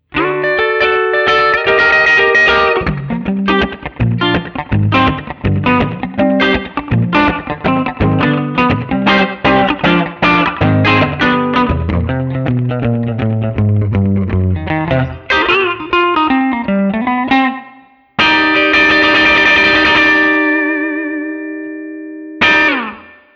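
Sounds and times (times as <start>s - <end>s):
rockabilly Guild Starfire III electric guitar: 0.0s - 23.3s.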